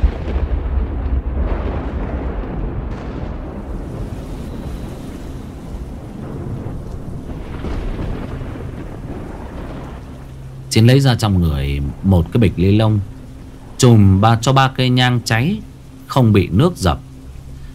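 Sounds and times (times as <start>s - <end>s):
pouring rain: 0.0s - 17.7s
thunder rumbling: 0.0s - 17.7s
speech: 10.8s - 13.1s, 13.8s - 17.0s.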